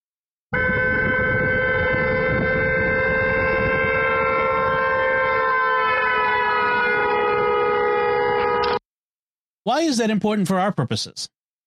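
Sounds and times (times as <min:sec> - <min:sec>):
loud sustained horn blaring as it passes by: 0:00.5 - 0:08.8
speech: 0:09.6 - 0:11.4.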